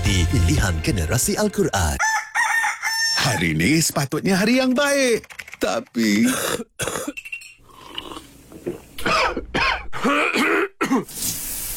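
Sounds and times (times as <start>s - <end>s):
speech: 0.1s - 2.2s, 3.2s - 7.3s, 10.0s - 11.4s
person with a sore throat clearing throat: 6.2s - 7.2s, 9.0s - 11.1s
person with a sore throat coughing: 6.2s - 7.2s, 9.0s - 11.1s.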